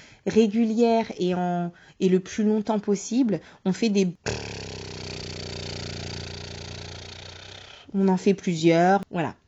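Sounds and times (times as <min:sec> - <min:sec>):
speech: 0:00.2 - 0:04.5, 0:07.9 - 0:09.4
lip trill vocal exercise: 0:04.2 - 0:07.9.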